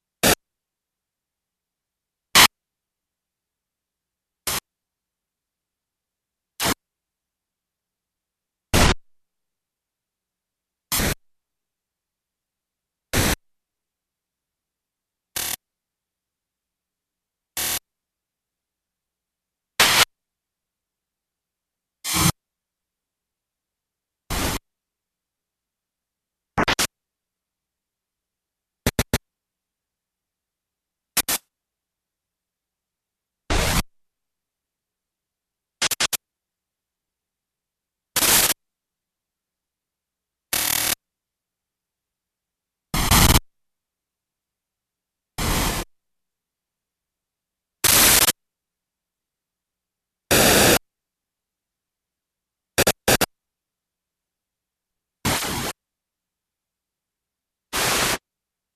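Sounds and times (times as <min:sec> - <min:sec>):
static noise: 0:00.0 - 0:00.7, 0:01.3 - 0:03.5, 0:04.4 - 0:07.1, 0:07.8 - 0:10.2, 0:10.8 - 0:11.6, 0:12.5 - 0:13.6, 0:14.6 - 0:15.7, 0:17.4 - 0:18.0, 0:19.7 - 0:20.3, 0:22.0 - 0:22.6, 0:24.2 - 0:24.7, 0:26.5 - 0:27.9, 0:28.8 - 0:29.3, 0:31.0 - 0:31.6, 0:33.5 - 0:34.0, 0:35.7 - 0:36.3, 0:38.1 - 0:38.6, 0:40.5 - 0:41.0, 0:42.9 - 0:43.5, 0:45.4 - 0:46.0, 0:47.8 - 0:48.4, 0:50.3 - 0:50.9, 0:52.8 - 0:53.4, 0:55.2 - 0:55.8, 0:57.7 - 0:58.3.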